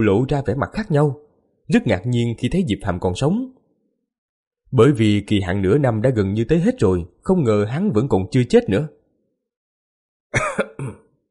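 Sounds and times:
speech: 0:00.0 - 0:03.6, 0:04.7 - 0:09.0, 0:10.3 - 0:11.0
man coughing up a mouthful of blood: 0:10.4 - 0:11.1.

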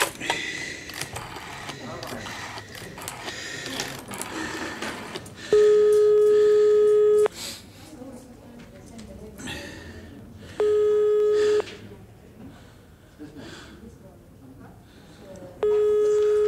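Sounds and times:
restaurant telephone ringing unanswered: 0:00.9 - 0:07.3, 0:10.6 - 0:11.8, 0:15.6 - 0:16.4.

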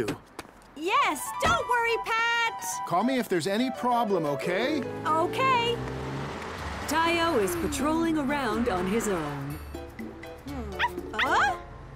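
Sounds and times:
speech: 0:00.0 - 0:06.0, 0:06.9 - 0:09.4
lone puppy whimpering and yapping: 0:10.8 - 0:11.6.

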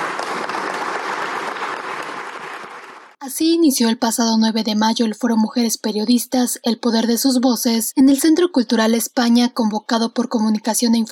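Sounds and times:
audience applause as tribute at a women journalists' forum: 0:00.0 - 0:03.2
speech: 0:03.4 - 0:11.1.

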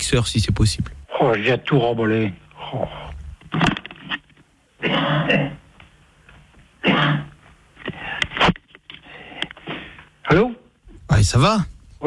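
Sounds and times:
speech: 0:00.1 - 0:03.6, 0:11.2 - 0:12.0
coughing and throat clearing over a telephone line: 0:04.8 - 0:05.7, 0:06.8 - 0:07.4.

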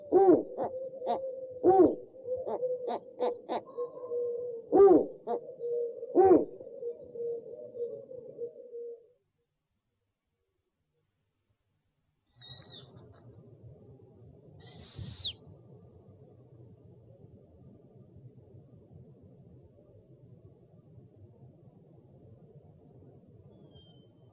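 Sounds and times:
owl short low calls: 0:00.0 - 0:09.2, 0:12.3 - 0:13.2, 0:14.6 - 0:15.4.

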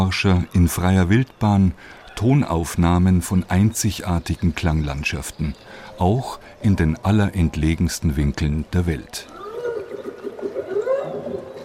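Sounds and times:
speech: 0:00.0 - 0:09.4
noise wash: 0:00.0 - 0:11.6
whale song off the coast of Alaska: 0:09.3 - 0:11.6.

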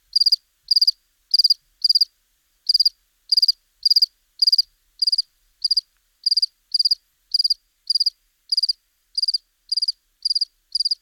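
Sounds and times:
house cricket chirping in Buoux, Vaucluse: 0:00.1 - 0:02.1, 0:02.7 - 0:11.0.

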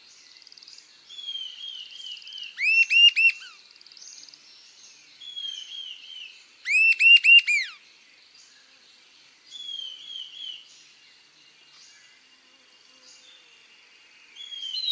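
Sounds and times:
Sibilant Sirystes Sirystes sibilator sibilator whistled calls: 0:02.6 - 0:03.5, 0:06.7 - 0:07.7.

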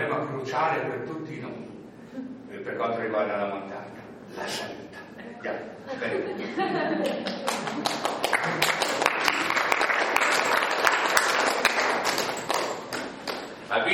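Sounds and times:
speech: 0:00.5 - 0:09.0
laughter: 0:04.9 - 0:08.8
audience applause at an author's talk about mountain climbing: 0:07.0 - 0:13.6.

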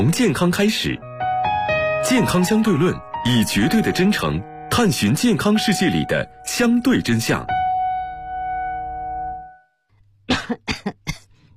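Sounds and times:
speech: 0:00.0 - 0:01.1, 0:02.0 - 0:07.6
sustained musical tone: 0:01.0 - 0:09.8
coughs from a host with a slight allergy in a recording studio: 0:10.3 - 0:11.4.

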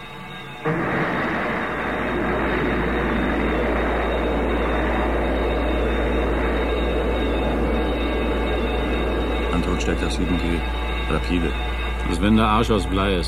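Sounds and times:
space shuttle rocket launch roar: 0:00.6 - 0:11.0
speech: 0:09.8 - 0:13.2.

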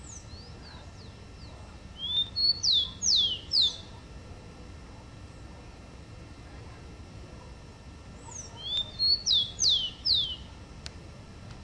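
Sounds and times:
rufous-collared sparrow singing: 0:00.0 - 0:03.9, 0:08.2 - 0:10.5.

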